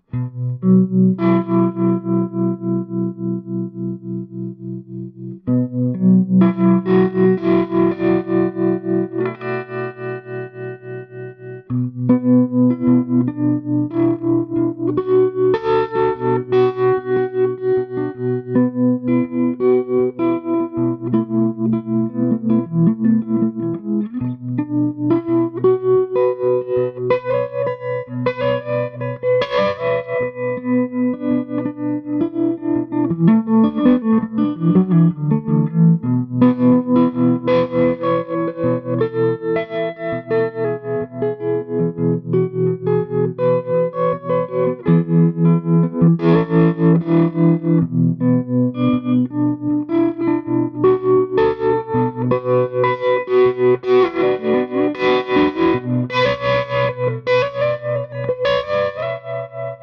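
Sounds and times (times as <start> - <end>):
clean electric guitar with tremolo through an EL34 amplifier: 0.0 - 59.8.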